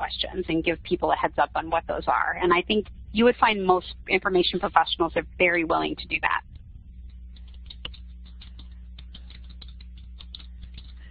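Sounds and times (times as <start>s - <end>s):
low constant hum: 0.0s - 11.0s
speech: 0.1s - 6.5s
typing on a computer keyboard: 7.4s - 11.0s.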